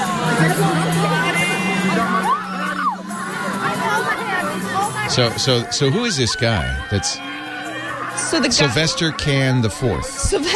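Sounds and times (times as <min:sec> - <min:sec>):
dense crowd screaming in a played video: 0:00.0 - 0:10.5
laughter: 0:00.0 - 0:10.5
speech: 0:05.2 - 0:07.3, 0:08.3 - 0:10.5.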